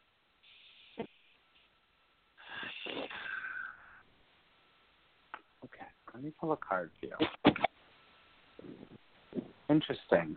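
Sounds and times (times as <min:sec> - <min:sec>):
deep inhalation during a guided relaxation: 0:02.4 - 0:04.0
speech: 0:06.2 - 0:07.6, 0:09.7 - 0:10.3.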